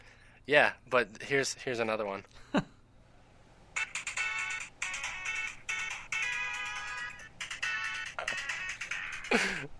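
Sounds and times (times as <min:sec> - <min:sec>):
speech: 0:00.5 - 0:02.7, 0:09.3 - 0:09.7
electronic video game tune through a small phone speaker: 0:03.8 - 0:09.7.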